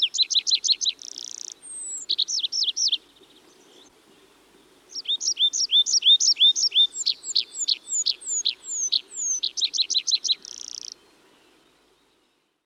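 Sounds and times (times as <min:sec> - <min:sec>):
Tree pipit Anthus trivialis song: 0:00.0 - 0:12.6.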